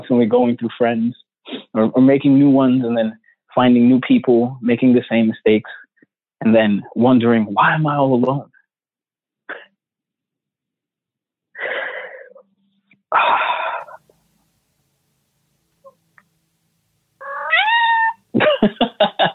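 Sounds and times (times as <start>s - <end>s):
speech: 0.0s - 1.2s, 1.8s - 8.5s
cat meowing: 17.2s - 18.3s
laughter: 18.4s - 19.3s.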